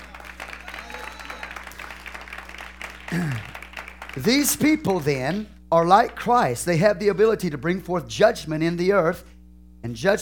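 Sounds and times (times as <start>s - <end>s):
audience clapping hands in praise: 0.0s - 4.8s
speech: 4.2s - 10.2s.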